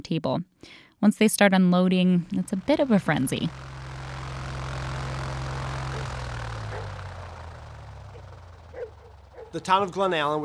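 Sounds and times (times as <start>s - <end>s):
speech: 0.0s - 3.7s, 9.5s - 10.4s
propeller mail plane droning overhead: 2.2s - 10.4s.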